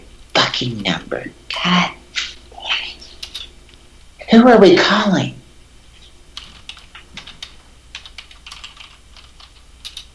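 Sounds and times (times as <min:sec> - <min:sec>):
low hum: 0:00.0 - 0:10.1
speech: 0:00.6 - 0:02.0, 0:04.3 - 0:05.4
typing on a computer keyboard while playing a computer game: 0:03.2 - 0:03.5, 0:06.4 - 0:10.1.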